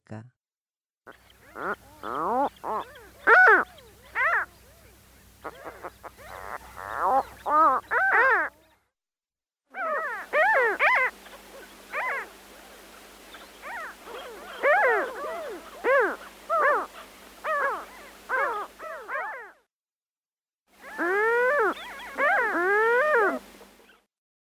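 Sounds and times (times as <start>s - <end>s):
Mediterranean gull calling: 1.1s - 8.7s, 9.8s - 19.6s, 20.8s - 24.0s.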